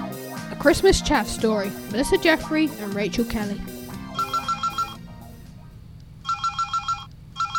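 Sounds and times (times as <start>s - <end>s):
speech: 0.6s - 3.8s
low hum: 0.6s - 7.5s
mobile phone ringtone of quick bright electronic beeps: 4.1s - 5.0s, 6.2s - 7.5s.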